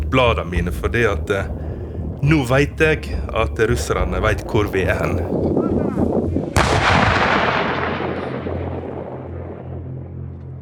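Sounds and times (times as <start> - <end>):
low outdoor ambient noise: 0.0 - 10.6
speech: 0.1 - 1.6, 2.2 - 6.0
Ukrainian artillery cannon firing a shell: 6.0 - 10.6.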